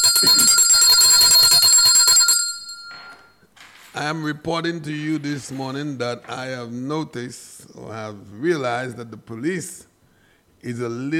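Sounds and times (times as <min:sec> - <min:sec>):
loud bell ringing in a fast continuous rattle: 0:00.0 - 0:03.4
speech: 0:04.0 - 0:09.9, 0:10.6 - 0:11.1.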